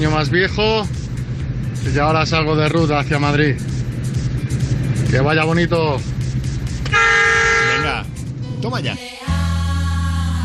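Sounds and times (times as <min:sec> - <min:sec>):
speech: 0:00.0 - 0:01.0, 0:01.8 - 0:03.8, 0:05.1 - 0:06.2, 0:08.6 - 0:09.1
engine and road rumble: 0:00.0 - 0:10.4
vehicle horn blasts: 0:06.9 - 0:08.1.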